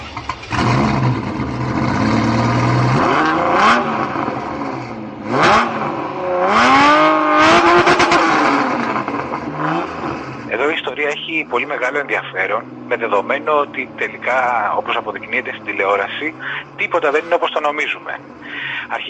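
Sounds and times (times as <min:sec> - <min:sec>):
Ferrari Testarossa sports car engine revving hard: 0:00.0 - 0:19.0
speech: 0:11.8 - 0:19.0.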